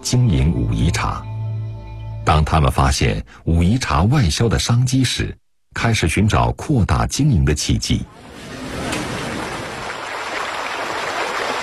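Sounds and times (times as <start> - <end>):
speech: 0.1 - 1.3, 2.3 - 8.4
narrow stream rushing through a village in Wuyishan: 8.2 - 11.6.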